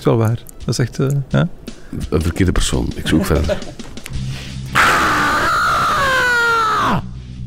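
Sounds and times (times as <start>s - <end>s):
speech: 0.0s - 4.3s
laughter: 3.1s - 4.0s
person screaming loudly: 4.8s - 7.2s.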